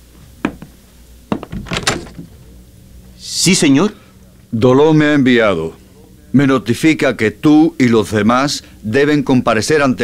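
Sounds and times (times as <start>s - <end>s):
door latch clicking: 1.4s - 2.3s
speech: 3.4s - 10.0s.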